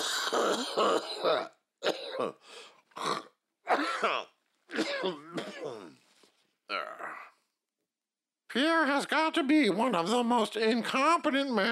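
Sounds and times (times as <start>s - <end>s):
man coughing and clearing his throat: 0.0s - 2.4s, 3.0s - 6.0s
speech: 0.3s - 6.0s, 6.7s - 7.3s, 8.5s - 11.7s.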